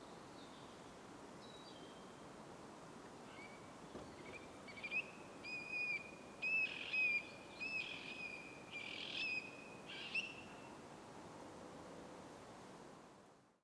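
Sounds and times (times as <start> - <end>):
soft background hiss: 0.0 - 13.6
Eurasian stone-curlew whistled calls: 3.3 - 10.6.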